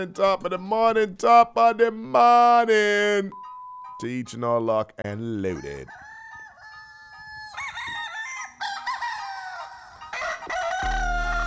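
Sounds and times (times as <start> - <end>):
speech: 0.0 - 3.4, 4.0 - 6.1
rooster crowing: 5.5 - 11.4.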